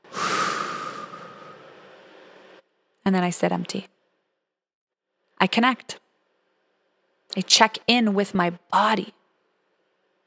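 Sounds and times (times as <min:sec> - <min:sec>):
long exaggerated exhale through mouth in a calming breathing exercise: 0:00.0 - 0:02.0
nasal inhales: 0:00.0 - 0:02.2
speech: 0:03.1 - 0:03.9, 0:05.4 - 0:06.0, 0:07.3 - 0:09.2.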